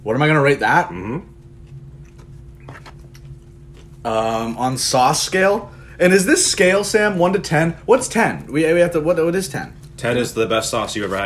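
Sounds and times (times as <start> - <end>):
steady low hum: 0.0 - 11.2
speech: 0.1 - 1.3, 4.0 - 11.2
someone biting and chewing a breaded fried chicken tender: 1.4 - 4.0.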